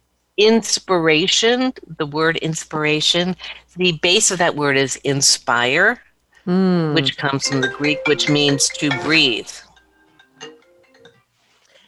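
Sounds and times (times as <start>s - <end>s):
speech: 0.4s - 9.7s
mobile phone ringtone with a short electronic melody: 7.4s - 11.1s.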